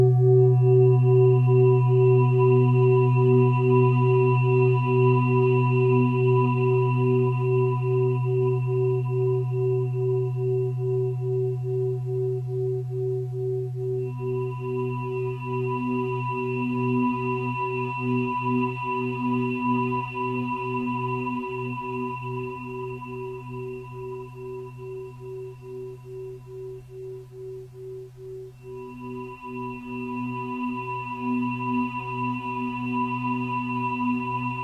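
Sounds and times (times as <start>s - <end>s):
singing bowl ringing with a deep hum and bright tone: 0.0s - 34.6s.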